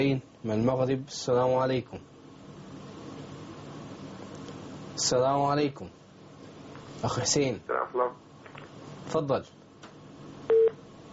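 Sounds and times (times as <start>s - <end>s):
speech: 0.0s - 2.1s, 5.0s - 6.0s, 7.0s - 8.3s, 9.1s - 9.6s
electronic line tone as a phone call is disconnected: 10.5s - 10.8s.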